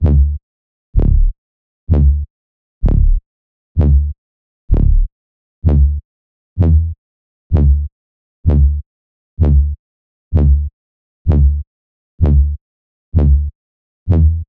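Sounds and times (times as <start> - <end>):
128 BPM D minor house bass drop loop: 0.0 - 0.4, 1.0 - 1.3, 1.9 - 3.2, 3.8 - 6.0, 6.6 - 7.9, 8.5 - 8.8, 9.4 - 10.7, 11.3 - 11.6, 12.2 - 12.6, 13.2 - 13.5, 14.1 - 14.4.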